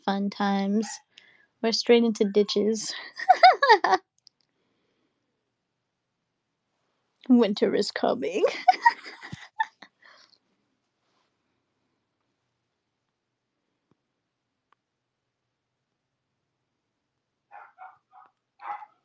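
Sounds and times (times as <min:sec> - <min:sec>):
speech: 0:00.0 - 0:04.1, 0:07.2 - 0:09.0
laughter: 0:03.1 - 0:04.0, 0:08.5 - 0:09.8
dogs barking: 0:17.5 - 0:19.0.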